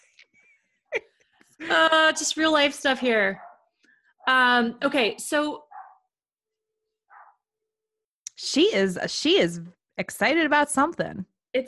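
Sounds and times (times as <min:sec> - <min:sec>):
speech: 0:01.6 - 0:03.5, 0:04.3 - 0:05.6, 0:08.4 - 0:11.6
female dog barking: 0:03.4 - 0:03.7, 0:05.7 - 0:06.1, 0:07.1 - 0:07.4.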